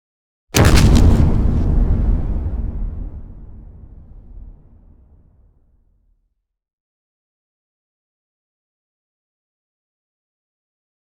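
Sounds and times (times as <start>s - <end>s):
medium explosion with fireball: 0.6s - 5.5s.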